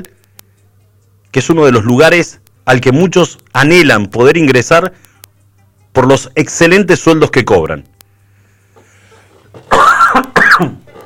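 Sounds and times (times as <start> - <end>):
speech: 1.3 - 5.1, 6.0 - 8.0, 10.6 - 10.8
brief quiet breath: 8.3 - 9.4
harsh coughs with throat clearing: 9.6 - 11.0.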